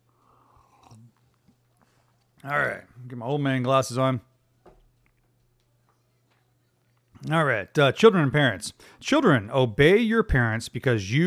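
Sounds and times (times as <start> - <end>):
person slurping hot coffee: 0.2 - 1.6
person swallowing: 0.5 - 1.6
speech: 2.4 - 4.3, 7.3 - 11.2.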